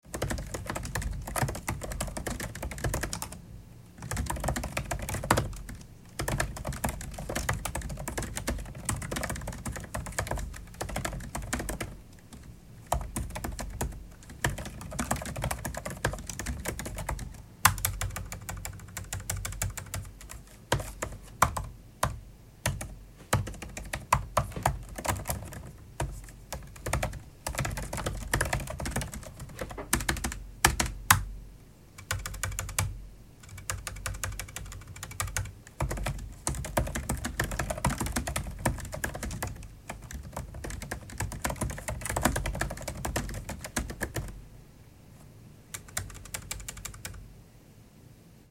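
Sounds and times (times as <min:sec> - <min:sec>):
computer keyboard typing: 0:00.0 - 0:03.4, 0:04.0 - 0:31.3, 0:32.0 - 0:44.4, 0:45.7 - 0:47.2.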